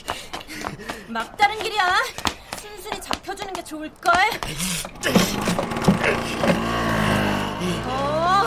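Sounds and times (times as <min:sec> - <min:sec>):
speech: 0:01.1 - 0:02.1, 0:03.7 - 0:06.5
motorcycle engine revving: 0:04.9 - 0:08.4.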